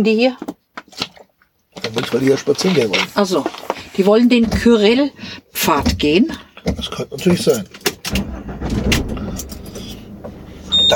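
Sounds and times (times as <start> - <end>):
speech: 0.0 - 1.0, 1.9 - 8.3
sharp clicks and rattles: 7.2 - 10.0
parked car's engine being started: 7.6 - 10.9.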